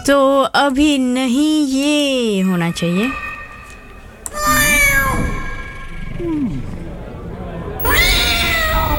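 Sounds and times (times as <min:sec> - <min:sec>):
speech: 0:00.1 - 0:03.3
cat meowing in long drawn-out cries: 0:04.3 - 0:05.5, 0:07.8 - 0:08.9.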